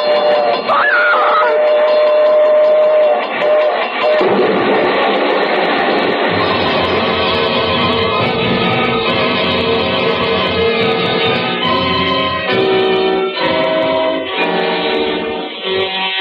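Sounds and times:
brief shrill whistle-like tone: 0:00.0 - 0:04.3
train passing at a railroad crossing: 0:00.0 - 0:16.1.

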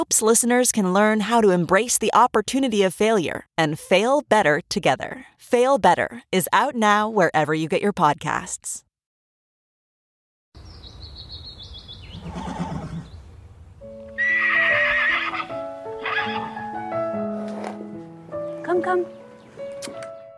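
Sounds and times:
speech: 0:00.0 - 0:08.8, 0:18.8 - 0:19.2
horse whinnying: 0:12.1 - 0:13.2, 0:14.2 - 0:16.6.

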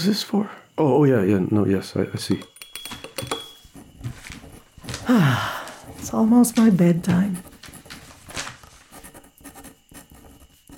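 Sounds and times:
speech: 0:00.0 - 0:02.5, 0:05.1 - 0:07.5
pens scratching across paper while writing: 0:03.6 - 0:05.1, 0:05.8 - 0:10.7.

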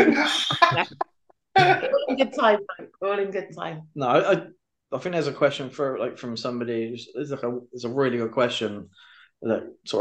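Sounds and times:
laughter: 0:00.0 - 0:01.0, 0:01.6 - 0:02.8
person coughing: 0:01.6 - 0:02.5
speech: 0:01.6 - 0:09.9.

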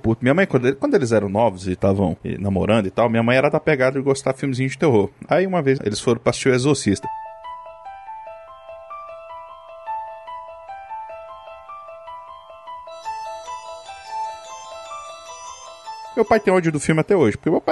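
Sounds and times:
speech: 0:00.1 - 0:07.2, 0:16.2 - 0:17.7
telephone ringing with a melodic electronic ringtone: 0:11.3 - 0:17.1.

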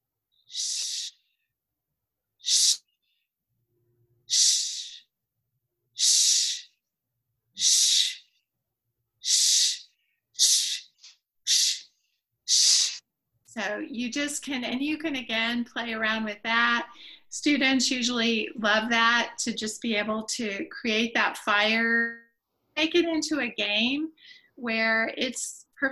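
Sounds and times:
person inhaling and hissing shh in a breathing exercise: 0:00.4 - 0:01.3, 0:02.4 - 0:03.0, 0:04.3 - 0:05.1, 0:06.0 - 0:06.8, 0:07.6 - 0:08.3, 0:09.2 - 0:13.0
speech: 0:00.5 - 0:00.7, 0:13.9 - 0:22.2, 0:22.8 - 0:25.9.

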